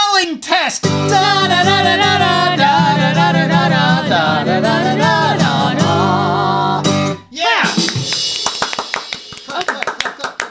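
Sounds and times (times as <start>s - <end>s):
voice with cheerful vocal sounds: 0.1s - 7.9s
quick uneven hand claps: 7.8s - 10.4s.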